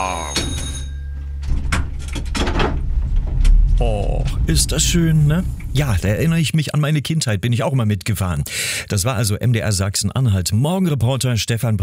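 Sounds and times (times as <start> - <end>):
tram door sliding open with a mechanical thunk: 0.6 - 6.5
steady low tram engine hum: 2.8 - 6.4
speech: 3.8 - 11.8.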